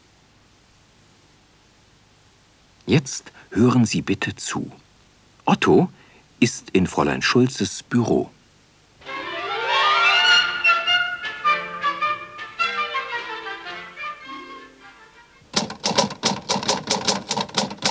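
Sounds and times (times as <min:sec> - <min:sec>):
speech: 0:02.9 - 0:04.8, 0:05.5 - 0:08.4
tonal melodic music: 0:09.0 - 0:15.4
typewriter keys striking as a letter is typed in an office: 0:15.5 - 0:17.8.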